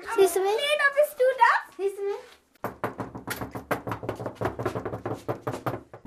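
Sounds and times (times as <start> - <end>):
speech: 0.2 - 1.1
door being opened with rattling knocks and clacks: 2.6 - 6.0.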